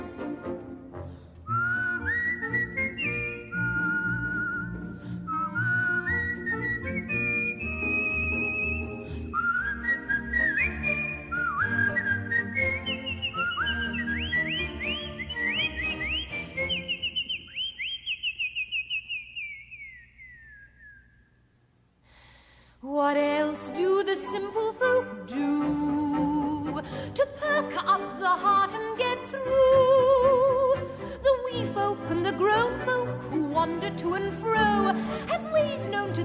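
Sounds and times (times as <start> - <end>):
steady musical accompaniment: 0.0 - 17.6, 23.2 - 36.2
person whistling a lilting melody: 1.5 - 21.3.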